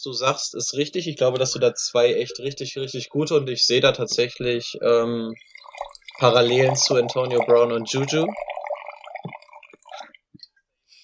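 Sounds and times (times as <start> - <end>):
speech: 0.0 - 5.6, 6.2 - 8.5
wine drips and small splashes: 3.9 - 10.6
wine trickling and glugging into a glass: 4.8 - 10.2.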